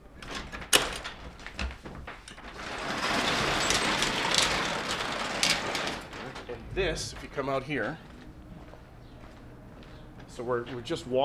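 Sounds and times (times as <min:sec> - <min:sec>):
garage door rattling open with metallic rumble: 0:00.1 - 0:07.6
speech: 0:06.8 - 0:08.1, 0:10.4 - 0:11.2.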